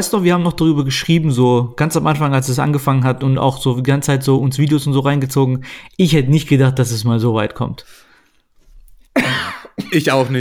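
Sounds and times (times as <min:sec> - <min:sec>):
speech: 0:00.0 - 0:08.0, 0:09.2 - 0:10.4
person coughing: 0:09.2 - 0:10.4.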